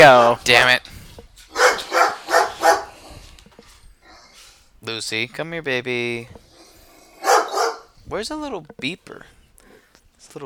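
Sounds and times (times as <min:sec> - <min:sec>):
speech: 0:00.0 - 0:00.9, 0:04.8 - 0:06.4, 0:08.1 - 0:09.4, 0:10.3 - 0:10.4
dogs barking: 0:01.5 - 0:03.2, 0:06.5 - 0:07.9.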